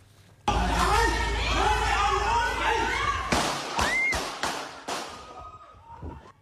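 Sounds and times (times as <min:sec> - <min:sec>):
agitated people shouting: 0:00.5 - 0:06.3
gunshots in a durian orchard shed: 0:03.3 - 0:05.3.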